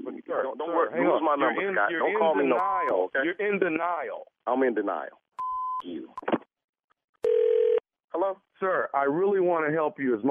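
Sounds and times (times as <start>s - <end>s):
speech: 0.3s - 5.2s, 5.8s - 6.4s, 8.1s - 10.2s
telephone dial tone while calling: 7.2s - 7.8s.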